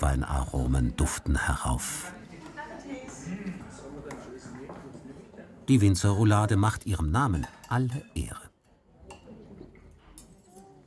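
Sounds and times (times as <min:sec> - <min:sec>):
speech: 0:00.0 - 0:02.2, 0:05.7 - 0:08.4
low murmur of voices: 0:00.0 - 0:10.8
wine glasses clinking in a toast: 0:06.7 - 0:08.5.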